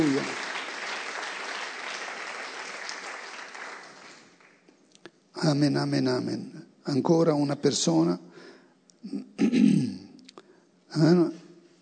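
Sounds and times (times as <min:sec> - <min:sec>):
speech: 0:00.0 - 0:00.4, 0:05.4 - 0:08.4, 0:09.0 - 0:09.8, 0:11.0 - 0:11.4
crowd applauding: 0:00.0 - 0:04.7.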